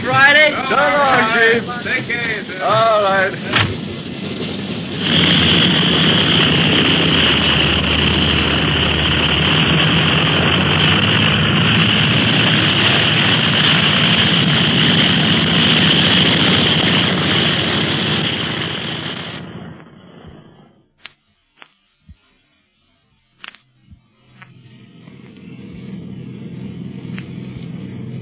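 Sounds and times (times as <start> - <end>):
speech: 0.0 - 4.1
airplane engines roaring: 0.0 - 21.0, 23.4 - 28.2
sharp clicks: 23.4 - 25.5.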